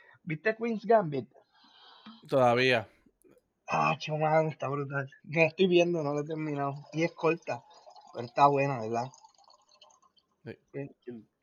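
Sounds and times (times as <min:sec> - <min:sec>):
speech: 0:00.3 - 0:01.5, 0:02.2 - 0:02.9, 0:03.7 - 0:09.2, 0:10.4 - 0:11.4
speech: 0:02.3 - 0:02.8
water pouring: 0:05.8 - 0:10.4.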